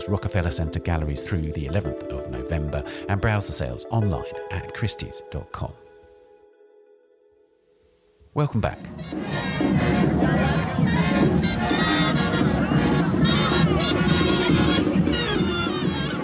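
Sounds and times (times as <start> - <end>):
speech: 0.0 - 5.8, 8.4 - 12.2
dense outdoor crowd shouting and cheering at a Halloween parade in New Orleans: 8.9 - 16.2.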